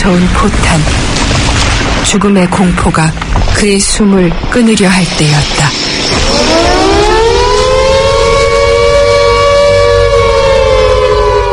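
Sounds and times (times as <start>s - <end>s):
speech: 0.2s - 6.6s
air raid siren wailing to signal the end of a raid: 5.1s - 11.5s.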